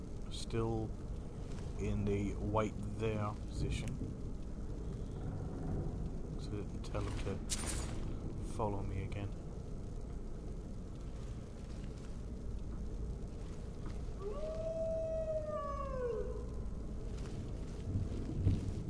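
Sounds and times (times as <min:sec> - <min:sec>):
constant low rumble of wind: 0:00.0 - 0:18.8
speech: 0:00.3 - 0:01.2, 0:01.8 - 0:04.2, 0:06.4 - 0:07.8, 0:08.6 - 0:09.4
wolf howling: 0:14.1 - 0:16.8.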